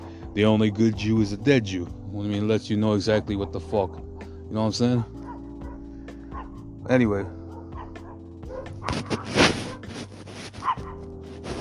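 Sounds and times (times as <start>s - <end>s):
speech: 0.4s - 5.2s, 6.9s - 7.4s
dogs whimpering: 5.1s - 6.6s, 7.4s - 9.9s, 10.6s - 11.1s
dogs barking: 5.1s - 6.7s, 7.3s - 11.1s.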